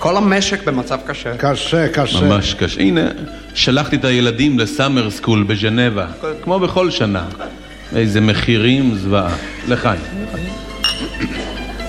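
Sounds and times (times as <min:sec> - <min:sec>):
speech: 0:00.0 - 0:11.4
people in conversation at a meal: 0:00.0 - 0:11.8
glasses clinking in a toast at a meal: 0:08.6 - 0:11.8.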